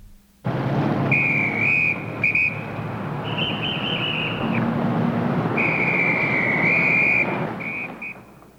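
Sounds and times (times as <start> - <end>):
loud steady rumbling noise: 0.0 - 8.5
police officer blowing a loud whistle: 1.1 - 4.7, 5.5 - 8.4.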